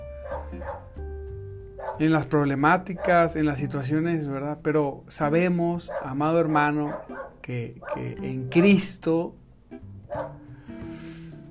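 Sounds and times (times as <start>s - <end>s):
dogs barking: 0.2s - 1.0s, 1.8s - 2.2s, 2.8s - 4.0s, 5.8s - 8.9s, 10.1s - 10.4s
speech: 2.0s - 9.4s.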